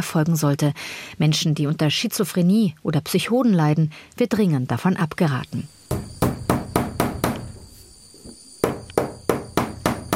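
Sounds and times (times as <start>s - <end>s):
speech: 0.0s - 6.1s
hammering thick nails into a wooden wall: 5.9s - 10.1s.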